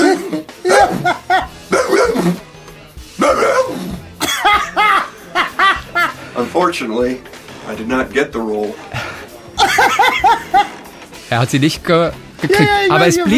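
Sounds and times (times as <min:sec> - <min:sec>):
laughter: 0:00.0 - 0:02.4, 0:03.2 - 0:06.4, 0:08.9 - 0:10.9, 0:12.4 - 0:13.3
man imitating a barking dog at an acting audition: 0:00.0 - 0:02.4, 0:03.2 - 0:03.9
speech: 0:06.6 - 0:08.9, 0:11.3 - 0:13.3.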